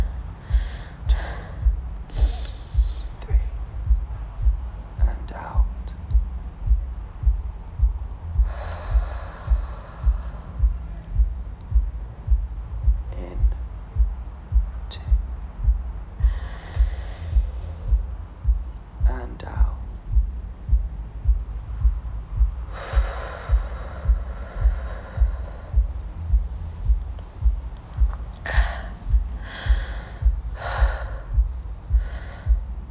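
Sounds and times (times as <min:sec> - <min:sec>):
slow deep breathing in and out: 0:00.0 - 0:32.8
steady low thumping pulse: 0:00.0 - 0:32.8.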